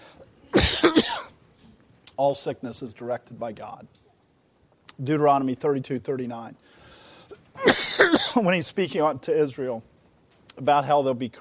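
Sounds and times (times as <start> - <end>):
person coughing harshly with a throaty rasp: 0.5 - 1.3, 7.6 - 8.4
speech: 2.2 - 4.0, 5.0 - 6.7, 7.6 - 9.9, 10.6 - 11.4.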